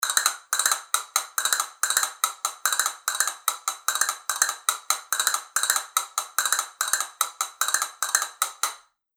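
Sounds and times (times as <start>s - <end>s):
double-box glass capricho castanets clacking: 0.0s - 8.8s.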